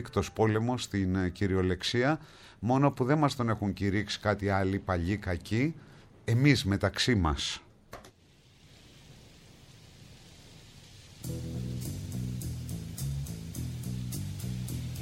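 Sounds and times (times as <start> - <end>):
speech: 0.0 - 7.6
steady rain: 8.2 - 15.0
music with rhythmic beats: 11.2 - 15.0.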